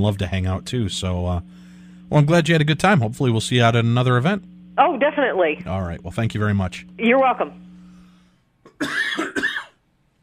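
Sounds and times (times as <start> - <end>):
speech: 0.0 - 7.6, 8.8 - 9.4
harsh chesty coughs: 8.6 - 9.8.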